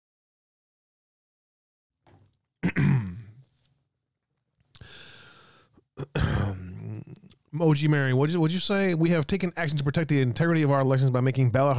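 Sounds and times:
person clearing throat: 0:02.6 - 0:03.4, 0:06.0 - 0:07.2
speech: 0:07.6 - 0:11.7.

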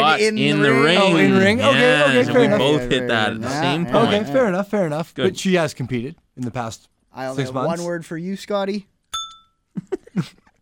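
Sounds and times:
speech: 0:00.2 - 0:08.9, 0:09.8 - 0:10.4
hand bell ringing: 0:09.2 - 0:09.6.

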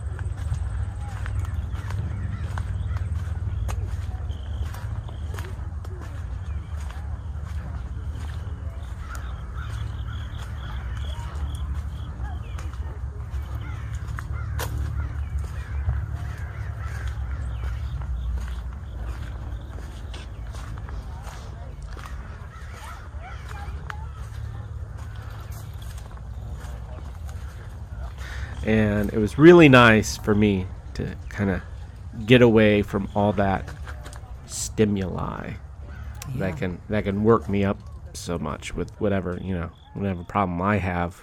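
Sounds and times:
footsteps crunching through dry corn kernels: 0:00.0 - 0:40.4
bird calls: 0:00.0 - 0:41.2
low outdoor rumble: 0:00.0 - 0:41.2
speech: 0:28.7 - 0:33.8, 0:34.5 - 0:35.6, 0:36.3 - 0:41.2.

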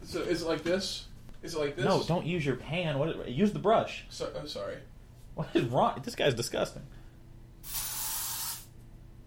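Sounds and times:
speech: 0:00.1 - 0:07.0
fizzy pressurized liquid spraying in a video game: 0:07.6 - 0:08.7.

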